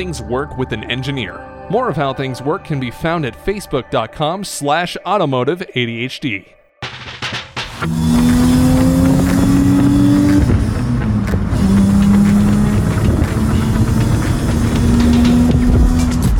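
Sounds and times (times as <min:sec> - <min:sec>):
speech: 0:00.0 - 0:06.6, 0:07.8 - 0:08.2
car engine revving up through the gears: 0:07.6 - 0:16.3.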